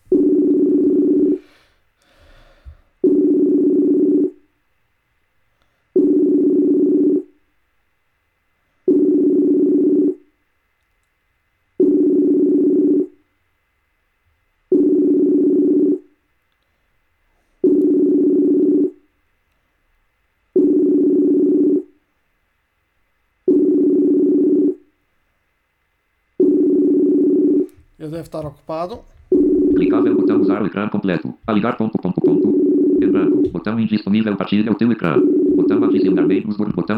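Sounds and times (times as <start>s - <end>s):
messaging app call ringing tone with low-pitched beeps: 0.1s - 1.4s, 3.0s - 4.4s, 6.0s - 7.4s, 8.9s - 10.2s, 11.8s - 13.2s, 14.7s - 16.1s, 17.6s - 19.0s, 20.6s - 21.9s, 23.5s - 24.8s, 26.4s - 27.8s, 29.3s - 36.9s
speech: 28.1s - 29.2s, 29.8s - 36.9s.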